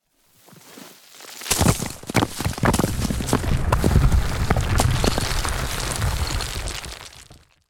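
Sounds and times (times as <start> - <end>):
rocks in a landslide: 1.4 - 7.6.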